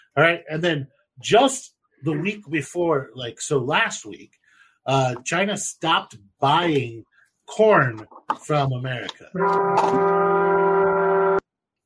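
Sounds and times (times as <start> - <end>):
speech: 0.2 - 10.6
train horn blast: 9.4 - 11.4.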